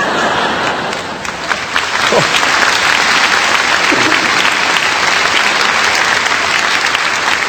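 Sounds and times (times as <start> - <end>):
audience laughter: 0.0 - 1.2, 3.8 - 4.9
crowd applauding: 0.0 - 7.4.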